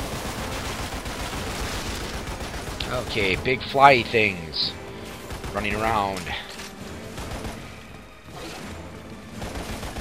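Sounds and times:
video game gunfire shooting at creatures: 0:00.0 - 0:04.1, 0:05.0 - 0:09.9
speech: 0:02.9 - 0:04.8, 0:05.6 - 0:06.5.

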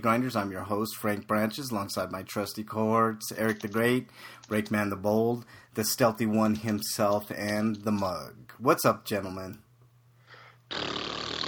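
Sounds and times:
speech: 0:00.0 - 0:09.6, 0:10.7 - 0:11.0
person blowing a loud sustained raspberry: 0:10.7 - 0:11.4.

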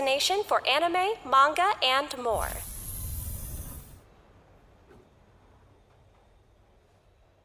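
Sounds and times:
speech: 0:00.0 - 0:02.7
faint low rumble: 0:01.8 - 0:05.8
train steam hissing sound effect: 0:02.3 - 0:04.0.

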